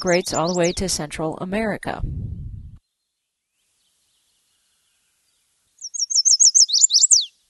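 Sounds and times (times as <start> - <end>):
chestnut-sided warbler singing: 0.0 - 1.1, 4.1 - 7.4
speech: 0.0 - 2.3
low rumble: 1.8 - 2.8.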